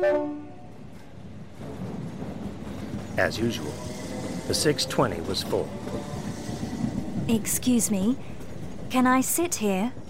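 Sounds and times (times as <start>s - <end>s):
train horn toot: 0.0s - 0.8s, 3.5s - 7.2s
rail cars rolling as a train pulls away from the station: 0.0s - 10.0s
speech: 3.2s - 3.9s, 4.5s - 6.2s, 7.3s - 8.3s, 8.9s - 10.0s.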